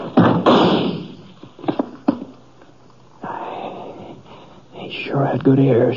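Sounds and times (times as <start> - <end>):
gunshot splintering into a wooden chair: 0.2 - 1.3
speech: 4.9 - 5.9.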